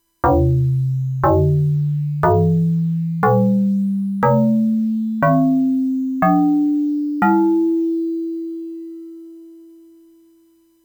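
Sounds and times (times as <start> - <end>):
FM synthesized drum: 0.2 - 7.9.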